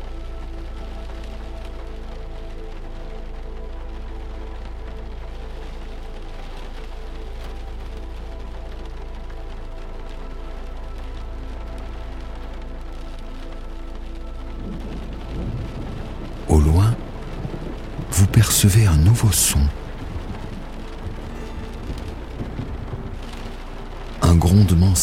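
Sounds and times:
steady rain falling and trickling heard from inside a house: 0:00.0 - 0:25.0
speech: 0:18.4 - 0:19.8, 0:24.6 - 0:25.0.

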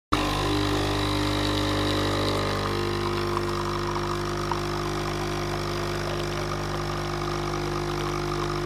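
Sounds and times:
espresso machine brewing coffee with pump buzzing: 0:00.1 - 0:08.6.

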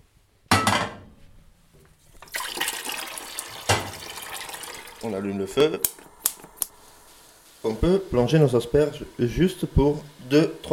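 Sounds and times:
running tap water filling a large metal cooking pot: 0:02.1 - 0:05.2
speech: 0:05.0 - 0:06.0, 0:07.6 - 0:10.7.

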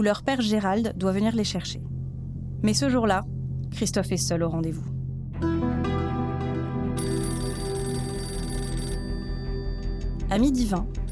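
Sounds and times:
speech: 0:00.0 - 0:01.9, 0:02.6 - 0:05.8, 0:10.3 - 0:11.1
low humming background: 0:00.0 - 0:08.4
telephone ringing in Troyes: 0:07.0 - 0:10.2.

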